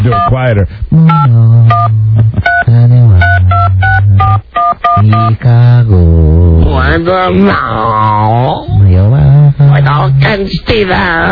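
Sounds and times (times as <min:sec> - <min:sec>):
two-tone touch-tone beeps of a telephone number being dialed: 0:00.0 - 0:00.3, 0:01.0 - 0:05.4
speech: 0:00.0 - 0:02.9, 0:05.0 - 0:11.3.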